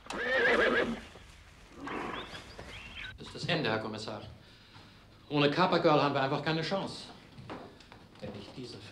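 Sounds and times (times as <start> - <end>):
horse neighing at a stud farm: 0.0 - 1.1, 1.8 - 2.4
speech: 3.5 - 4.4, 5.3 - 7.2.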